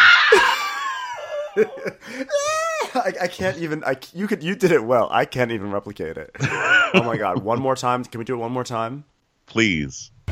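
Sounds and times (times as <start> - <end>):
woman's horrified shrill scream with wavering shrieks and gasps: 0.0 - 1.7
laughter: 0.0 - 3.8, 6.4 - 7.8
speech: 1.6 - 10.2.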